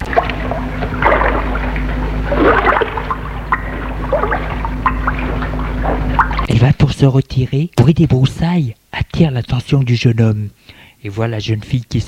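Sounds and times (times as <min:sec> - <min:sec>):
water splashing from a young man swimming in a pond: 0:00.0 - 0:06.6
steady low hum: 0:00.0 - 0:08.4
speech: 0:07.0 - 0:12.0.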